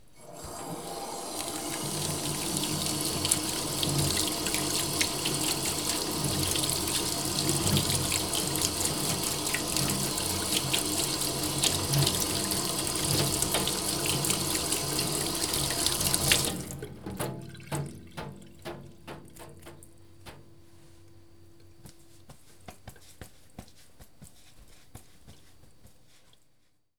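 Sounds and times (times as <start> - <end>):
water in the house: 0.0 - 21.2.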